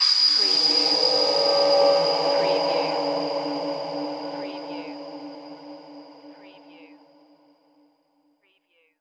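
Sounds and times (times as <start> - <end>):
vocal hit: 0.1 - 7.2.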